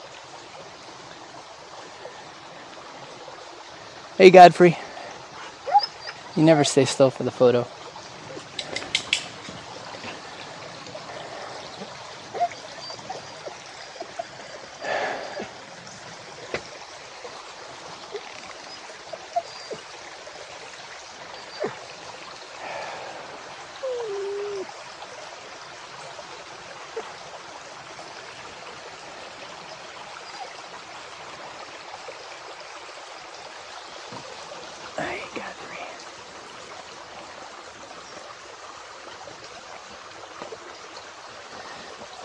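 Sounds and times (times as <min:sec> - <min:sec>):
stream water babbling and trickling: 0:00.0 - 0:42.2
speech: 0:04.2 - 0:04.8, 0:06.4 - 0:07.8
water splashes and knocks: 0:08.2 - 0:14.2, 0:16.0 - 0:18.7, 0:34.0 - 0:35.6, 0:38.1 - 0:42.2.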